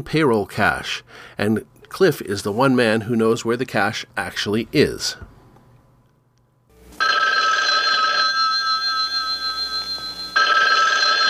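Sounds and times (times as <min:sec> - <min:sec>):
speech: 0:00.0 - 0:05.3
answering machine picking up: 0:07.0 - 0:11.2
old-fashioned telephone bell ringing: 0:07.0 - 0:11.2.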